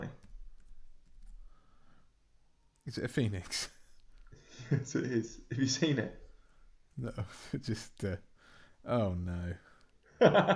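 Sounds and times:
quiet hum: 0.0 - 10.5
typing on a computer keyboard: 0.1 - 1.5
speech: 2.9 - 3.8, 4.7 - 6.2, 7.0 - 10.5
laughter: 7.0 - 8.2, 8.9 - 9.6, 10.2 - 10.5.

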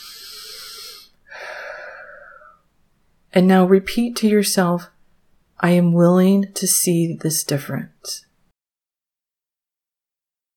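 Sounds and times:
deep breath in through the nose and out through the mouth: 0.0 - 2.7
speech: 3.3 - 5.0, 5.6 - 8.3.

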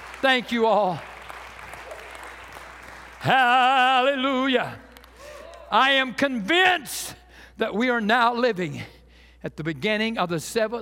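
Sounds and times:
audience clapping in praise: 0.0 - 5.9
speech: 0.2 - 1.1, 3.2 - 4.8, 5.7 - 10.8.

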